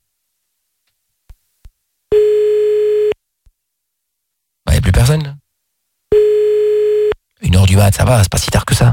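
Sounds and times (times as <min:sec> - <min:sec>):
telephone line tone while placing a call: 0:02.1 - 0:03.2, 0:06.1 - 0:07.2
speech: 0:05.1 - 0:05.3, 0:07.7 - 0:08.9.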